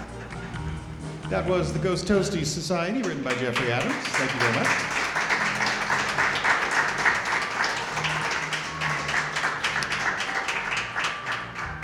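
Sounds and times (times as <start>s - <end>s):
speech: 1.3s - 5.0s
audience applause with many hands clapping: 2.9s - 11.8s.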